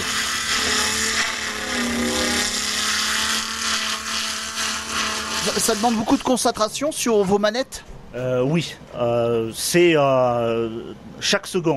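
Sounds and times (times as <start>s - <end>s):
sawmill saw cutting planks from a log: 0.0s - 7.5s
speech: 5.5s - 11.7s.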